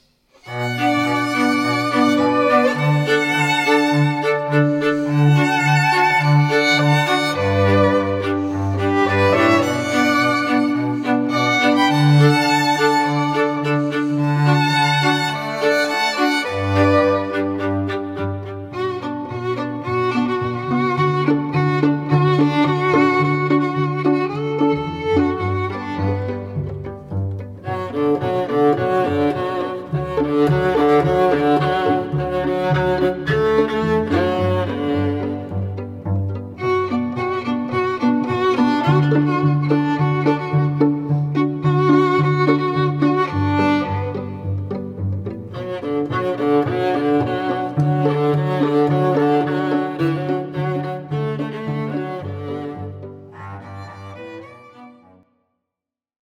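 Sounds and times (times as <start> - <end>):
string quartet, trio or duo playing: 0.0 - 55.3.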